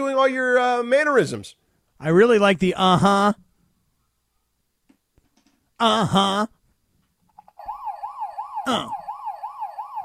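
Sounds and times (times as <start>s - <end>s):
speech: 0.2s - 3.4s, 5.8s - 6.6s, 8.7s - 9.0s
toy siren wailing: 7.6s - 10.0s.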